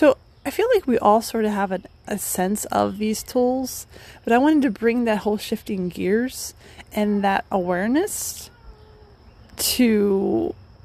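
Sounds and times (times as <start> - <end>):
speech: 0.0 - 8.5, 9.6 - 10.6
pet cat meowing: 8.5 - 9.2.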